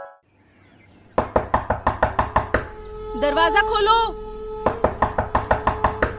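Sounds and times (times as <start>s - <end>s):
loud knocking on a door: 1.2s - 2.8s, 4.6s - 6.1s
brief voiced passage: 3.2s - 4.2s.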